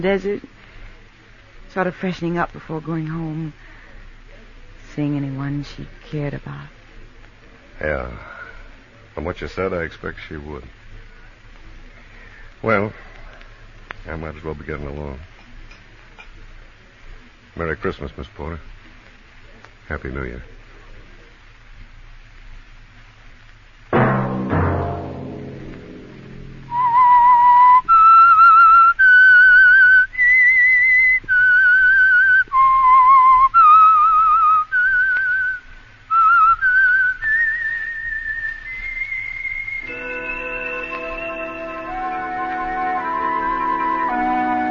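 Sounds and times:
speech: 0:00.0 - 0:00.6, 0:01.7 - 0:03.7, 0:05.0 - 0:06.8, 0:07.8 - 0:08.4, 0:09.2 - 0:10.8, 0:12.6 - 0:13.1, 0:14.0 - 0:15.3, 0:17.6 - 0:18.7, 0:19.9 - 0:20.5
whistled melody signalling a program: 0:26.7 - 0:44.6
orchestral music: 0:39.8 - 0:44.6.

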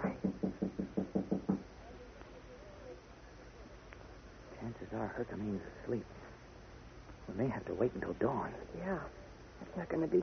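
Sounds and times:
soft knocking on a bolted solid wooden door: 0:00.0 - 0:01.7
speech: 0:04.8 - 0:06.3, 0:07.3 - 0:10.2.

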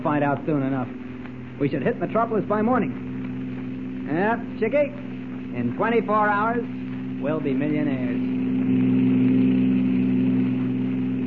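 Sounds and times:
speech: 0:00.1 - 0:01.0, 0:01.6 - 0:03.1, 0:04.1 - 0:09.0
roadster engine at full throttle speeding along a highway at night: 0:02.6 - 0:11.2.

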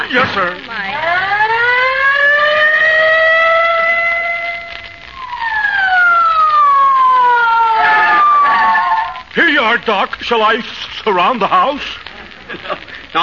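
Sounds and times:
police squad car siren wailing: 0:00.0 - 0:09.4
speech: 0:00.1 - 0:01.2, 0:09.7 - 0:13.2.

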